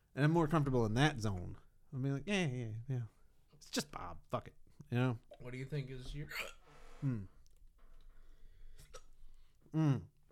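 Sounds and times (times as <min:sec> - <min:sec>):
speech: 0:00.2 - 0:07.4, 0:09.7 - 0:10.1
voiced hiccups: 0:06.3 - 0:06.6.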